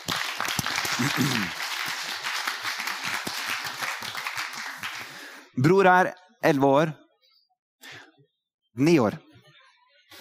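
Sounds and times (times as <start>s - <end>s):
church audience applauding: 0.0s - 5.4s
speech: 1.0s - 1.6s, 5.6s - 7.0s, 8.8s - 9.2s.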